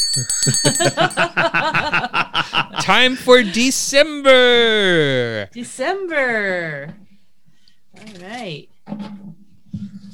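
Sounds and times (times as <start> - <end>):
small hand bell ringing: 0.0 - 1.4
speech: 0.2 - 1.9, 2.9 - 7.0, 8.1 - 9.2.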